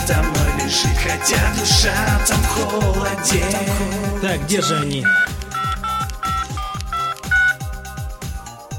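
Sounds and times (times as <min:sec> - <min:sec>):
pulsing bass beat: 0:00.0 - 0:08.4
speech: 0:00.1 - 0:05.4
phone ringtone with bright repeating electronic melody: 0:04.4 - 0:07.8.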